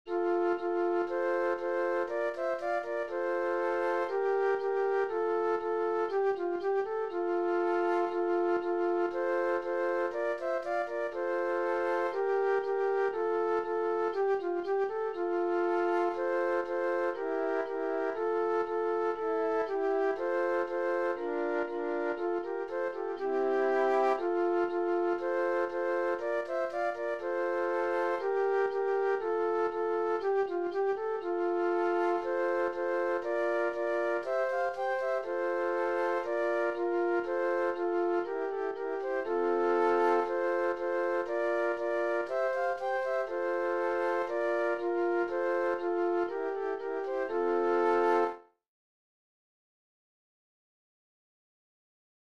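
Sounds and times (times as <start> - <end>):
flute trio playing: 0.1 - 48.5.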